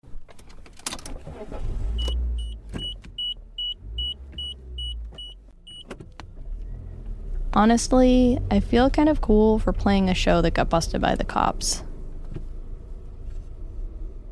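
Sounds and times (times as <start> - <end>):
clunks and rattles inside a car: 0.0 - 7.5
car rumbling from inside the cabin: 0.0 - 14.2
speech: 1.4 - 2.0, 7.6 - 11.9
high car warning chime beeping: 2.0 - 5.9.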